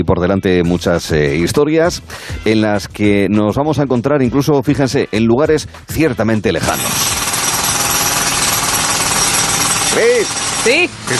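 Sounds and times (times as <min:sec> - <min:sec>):
speech: 0:00.0 - 0:07.4, 0:10.0 - 0:11.1
jackhammer pounding: 0:06.6 - 0:11.1.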